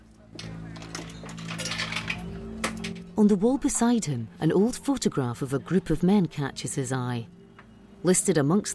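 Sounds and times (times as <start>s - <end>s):
coins clinking into the slot of a cigarette vending machine in a pub: 0.4s - 3.1s
speech: 3.2s - 7.4s, 8.0s - 8.7s.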